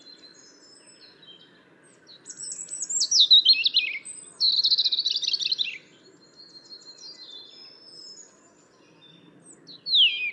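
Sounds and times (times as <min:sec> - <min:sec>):
European robin Erithacus rubecula song: 0:00.0 - 0:10.3.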